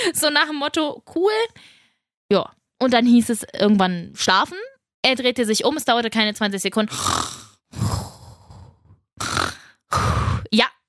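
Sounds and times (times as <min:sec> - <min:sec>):
speech: 0:00.1 - 0:07.4, 0:10.5 - 0:10.7
person imitating a man snoring in bed with their voice: 0:06.9 - 0:10.5.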